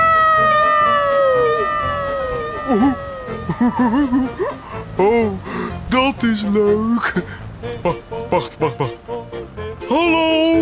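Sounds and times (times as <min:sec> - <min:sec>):
voice imitating cat meows with echo: 0:00.0 - 0:03.8
laughter: 0:01.8 - 0:05.8, 0:06.7 - 0:09.1
speech: 0:03.6 - 0:09.1, 0:10.0 - 0:10.5.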